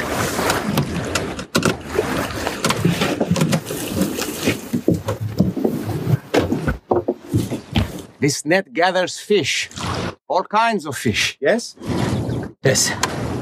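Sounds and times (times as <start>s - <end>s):
water lapping against a wooden fishing boat: 0.0s - 8.2s, 11.8s - 13.4s
wooden fishing boat hull creaking and knocking: 0.1s - 8.2s, 11.8s - 13.4s
speech: 8.2s - 12.0s, 12.6s - 13.3s.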